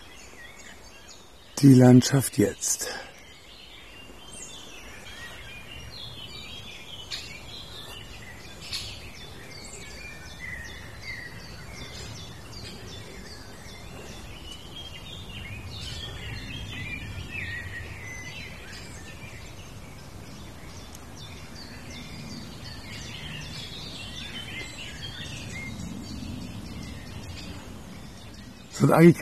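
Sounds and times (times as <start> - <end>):
blackbird singing: 0.0 - 29.2
speech: 1.6 - 3.1, 28.8 - 29.2.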